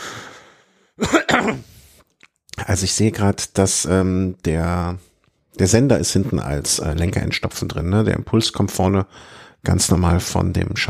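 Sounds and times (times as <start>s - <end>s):
person clearing throat: 1.0s - 1.8s
speech: 2.7s - 10.8s.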